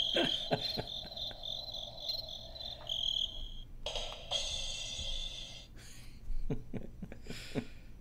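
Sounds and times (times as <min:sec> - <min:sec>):
crickets chirping at night outdoors: 0:00.0 - 0:05.6.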